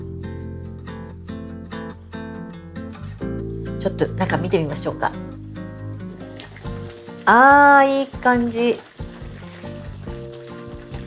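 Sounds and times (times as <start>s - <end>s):
speech: 3.8s - 5.3s, 7.2s - 8.9s
pork miso soup with new onion and corn bubbling in a pot: 6.2s - 11.0s.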